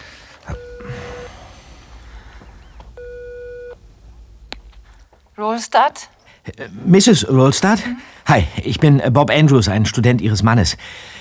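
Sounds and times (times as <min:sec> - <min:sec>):
faint breaths: 0:00.0 - 0:03.4, 0:06.2 - 0:06.5, 0:07.8 - 0:08.3, 0:10.8 - 0:11.1
low rumble: 0:00.0 - 0:08.2
mobile phone ringing tone over speakerphone in a student dormitory: 0:00.5 - 0:03.8
speech: 0:05.4 - 0:11.1.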